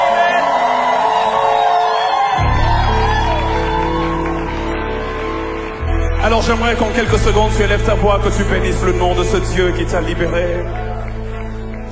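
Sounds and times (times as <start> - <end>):
large crowd of worshippers shouting cries of joy: 0.0 - 6.0
speech: 6.3 - 11.0.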